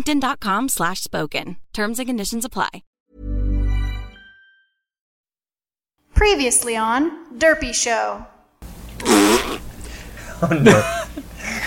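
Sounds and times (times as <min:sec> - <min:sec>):
speech: 0:00.0 - 0:02.9, 0:06.2 - 0:08.3, 0:10.4 - 0:11.3
fart noises made with the mouth: 0:09.0 - 0:09.7
laughter: 0:10.2 - 0:11.6.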